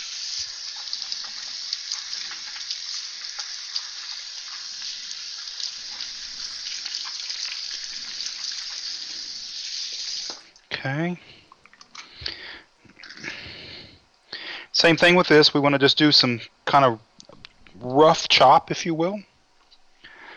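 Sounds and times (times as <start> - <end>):
running tap water rinsing a bell pepper: 0.0 - 10.7
speech: 10.8 - 11.4, 14.8 - 17.1, 17.8 - 19.3.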